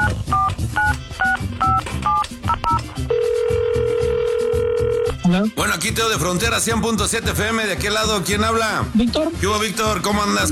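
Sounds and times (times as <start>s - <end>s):
phone keypad tones while dialing: 0.0s - 5.2s
rhythmic music bed: 0.0s - 10.5s
speech: 5.4s - 10.5s.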